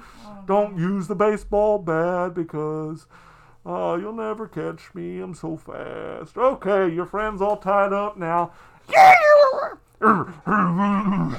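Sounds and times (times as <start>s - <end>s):
speech: 0.3s - 11.3s
woman imitating a deep drawn-out growl: 8.9s - 11.3s.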